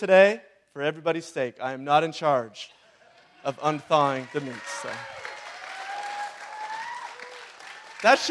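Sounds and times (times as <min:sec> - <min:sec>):
speech: 0:00.0 - 0:02.8, 0:03.4 - 0:05.2, 0:08.0 - 0:08.2
crowd applauding: 0:03.1 - 0:08.2.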